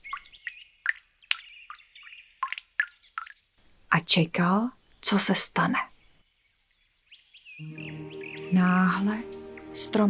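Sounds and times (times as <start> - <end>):
drips of potion falling onto a tree in a forest: 0.0 - 3.6
speech: 3.9 - 5.9, 8.5 - 10.0.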